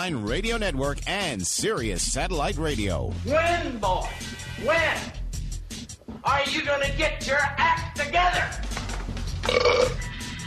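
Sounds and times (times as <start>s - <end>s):
speech: 0.0s - 5.2s, 6.2s - 8.7s, 9.5s - 10.1s
belch: 9.4s - 10.1s.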